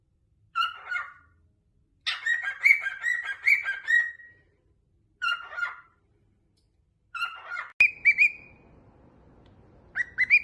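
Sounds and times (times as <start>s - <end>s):
cockatiel chattering with harsh and whistled notes: 0.5s - 1.3s, 2.0s - 4.3s, 5.2s - 6.0s, 7.2s - 8.6s, 9.9s - 10.4s.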